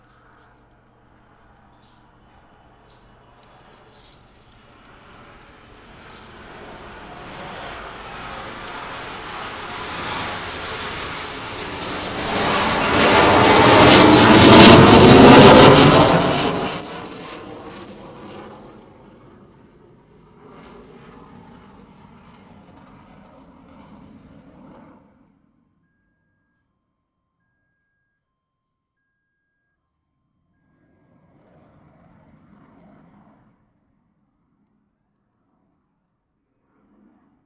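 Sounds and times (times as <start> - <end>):
military jet flying over Sunnyvale: 0.0 - 25.4, 30.7 - 33.9.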